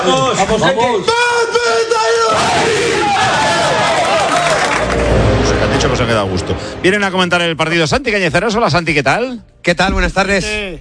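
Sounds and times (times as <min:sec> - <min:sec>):
speech: 0:00.0 - 0:03.4, 0:05.1 - 0:10.7
team shouting a war cry in a locker room: 0:02.1 - 0:04.6.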